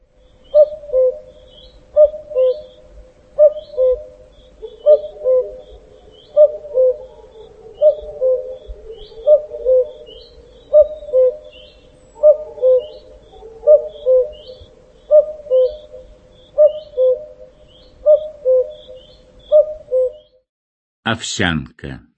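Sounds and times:
cuckoo calling in a forest: 0.3 - 20.4
speech: 21.1 - 22.1.

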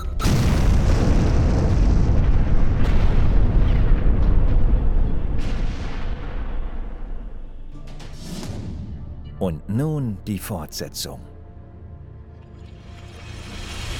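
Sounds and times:
bomb explosion in a staged drama scene: 0.2 - 7.3
speech: 9.5 - 11.3.

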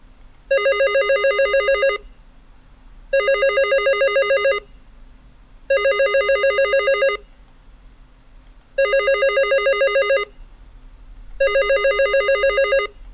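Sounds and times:
telephone ringing with bright electronic tone: 0.5 - 2.0, 3.2 - 4.7, 5.7 - 7.2, 8.8 - 10.3, 11.4 - 13.0.

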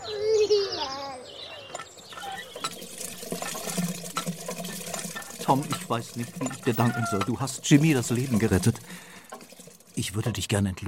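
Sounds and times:
water splashing as someone washes another person's face: 2.2 - 10.6
speech: 5.5 - 9.1, 10.0 - 10.8.

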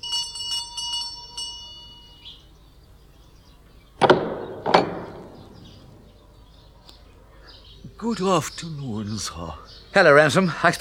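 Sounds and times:
house doorbell chiming: 0.0 - 2.3
sharp loud thuds: 4.0 - 6.1
speech: 8.0 - 10.7.

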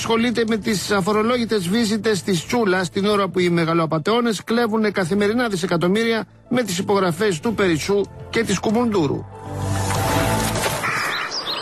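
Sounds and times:
speech: 0.0 - 9.8
lesser kestrel chirping calls: 10.8 - 11.6.

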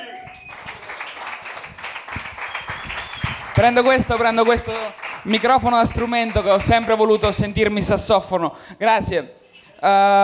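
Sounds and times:
audience applause at a stand-up comedy night: 0.0 - 8.1
speech: 3.6 - 10.2.

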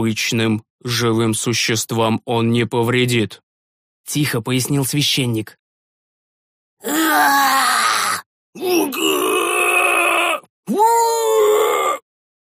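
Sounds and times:
speech: 0.0 - 3.4, 4.0 - 5.6, 6.8 - 7.7, 8.6 - 9.7, 10.7 - 12.0
agonized trembling screams echoing from a granite gorge: 6.8 - 12.0.

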